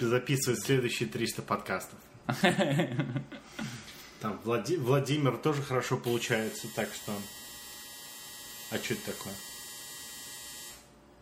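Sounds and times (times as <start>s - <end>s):
speech: 0.0s - 7.4s, 8.7s - 9.5s
laughter: 2.3s - 3.8s
washing machine harsh electronic buzzer: 6.1s - 10.9s.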